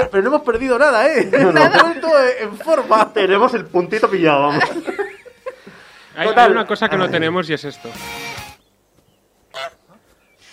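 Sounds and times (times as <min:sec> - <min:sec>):
speech: 0:00.0 - 0:05.0, 0:06.2 - 0:08.2
laughter: 0:01.1 - 0:07.4
goose honking: 0:09.5 - 0:09.9.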